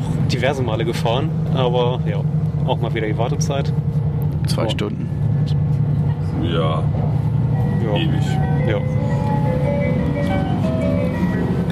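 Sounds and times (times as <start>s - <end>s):
speech: 0.3s - 5.6s, 6.4s - 10.5s
closing music of chime-like tones played as shops close: 7.6s - 11.7s.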